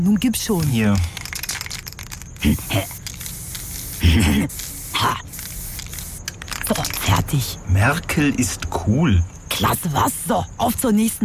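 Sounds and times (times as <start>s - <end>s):
speech: 0.0s - 1.2s, 2.4s - 3.0s, 4.1s - 5.3s, 6.7s - 11.2s
aerosol spray can spraying graffiti on a wall: 0.5s - 7.0s.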